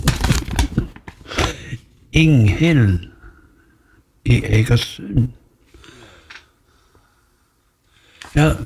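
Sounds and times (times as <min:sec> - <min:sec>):
paper crumpling and crinkling: 0:00.0 - 0:01.6
speech: 0:02.2 - 0:03.1, 0:04.3 - 0:05.4, 0:08.4 - 0:08.6.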